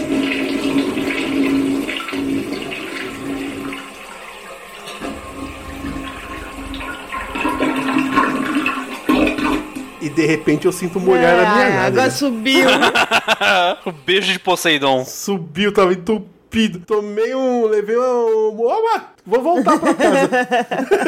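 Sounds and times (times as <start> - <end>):
toilet flushing: 0.0 - 14.8
speech: 10.2 - 21.0
laughter: 12.4 - 14.5, 19.5 - 21.0.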